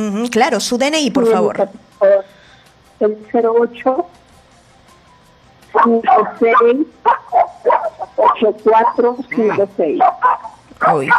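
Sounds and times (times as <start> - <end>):
speech: 0.0 - 2.3, 3.0 - 4.2, 5.8 - 7.5, 8.2 - 11.1
small dog yapping on a phone call: 5.8 - 9.2, 10.0 - 11.1.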